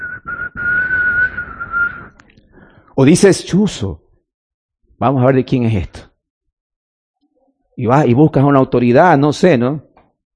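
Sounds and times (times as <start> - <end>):
person whistling: 0.0 - 2.2
speech: 3.0 - 4.0, 5.0 - 6.1, 7.8 - 9.9.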